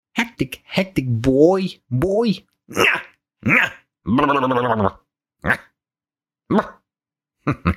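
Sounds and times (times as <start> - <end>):
speech: 0.4 - 5.7, 6.5 - 6.8, 7.4 - 7.7
person imitating a yapping dog: 2.7 - 5.8, 6.5 - 6.8.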